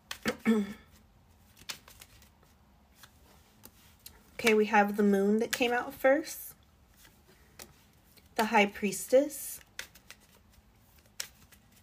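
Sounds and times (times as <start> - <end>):
tarot card deck being shuffled in riffling bursts: 0.0 - 11.8
speech: 0.5 - 0.8, 4.4 - 6.5, 8.4 - 9.6.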